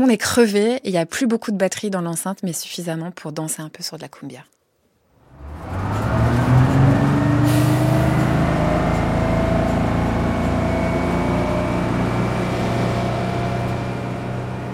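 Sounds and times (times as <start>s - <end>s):
speech: 0.0s - 4.6s
bus engine drone inside a moving bus: 5.2s - 14.7s.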